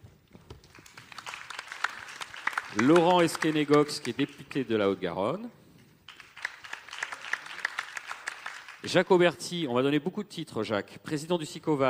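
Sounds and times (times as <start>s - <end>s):
audience applause at a panel discussion: 0.5s - 4.6s, 6.1s - 9.0s
speech: 2.8s - 5.6s, 8.8s - 11.8s.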